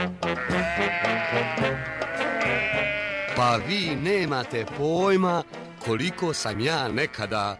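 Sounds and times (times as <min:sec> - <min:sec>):
sheep bleating: 0:00.2 - 0:04.4, 0:05.9 - 0:07.5
speech: 0:03.4 - 0:07.5.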